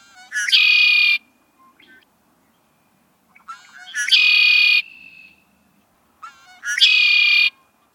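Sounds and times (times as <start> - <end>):
red-winged blackbird calling in early spring: 0.0 - 1.2, 3.4 - 5.4, 6.2 - 7.7.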